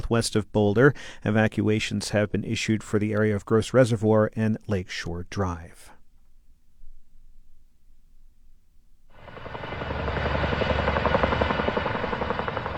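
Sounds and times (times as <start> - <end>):
speech: 0.1 - 6.0
helicopter hovering while pulling water from a reservoir to fight a fire: 9.2 - 12.7
low rumble: 9.2 - 12.7.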